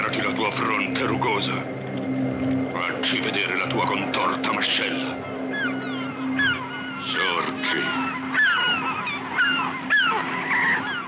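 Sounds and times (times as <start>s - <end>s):
steady low hum: 0.0s - 11.0s
speech: 0.1s - 5.3s, 7.0s - 8.6s
group of geese honking: 3.2s - 11.0s.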